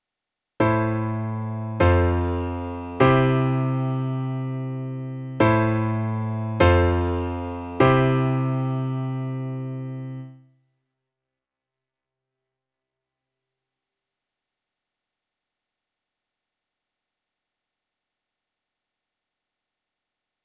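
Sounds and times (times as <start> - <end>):
three chord progression: 0.6 - 10.4.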